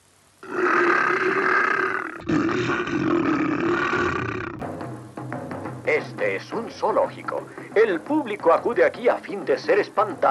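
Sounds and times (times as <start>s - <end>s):
cartoon lion roaring at a zoo: 0.4s - 4.6s
speech: 2.3s - 3.5s, 6.0s - 10.2s.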